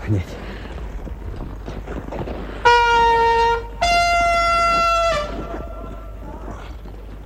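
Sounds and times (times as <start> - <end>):
speech: 0.1 - 0.4
horn blown as a signal: 2.6 - 6.2.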